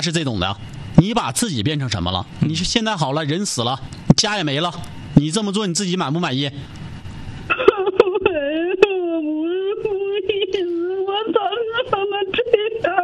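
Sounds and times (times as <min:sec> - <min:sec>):
speech: 0:00.0 - 0:06.8
person crying: 0:07.5 - 0:13.0.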